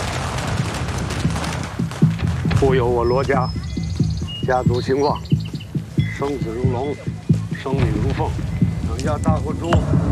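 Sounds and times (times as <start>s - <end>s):
sharp firecracker bangs: 0.0s - 3.4s
firecrackers going off during a traditional Chinese family blessing ritual: 0.0s - 10.1s
speech: 2.6s - 3.6s, 4.5s - 5.3s, 6.2s - 10.1s.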